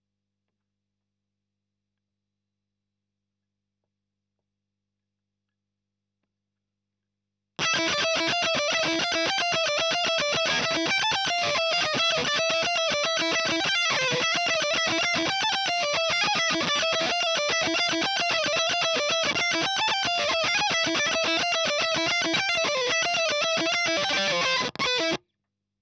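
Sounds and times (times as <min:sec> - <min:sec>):
fuzz guitar ending: 0:07.6 - 0:25.2.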